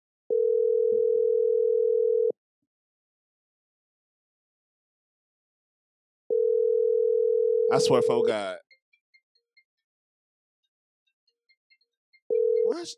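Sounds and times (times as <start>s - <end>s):
phone ringback tone from an outgoing call: 0.3s - 2.4s, 6.3s - 8.3s, 12.3s - 12.9s
speech: 7.7s - 8.6s, 12.7s - 12.9s.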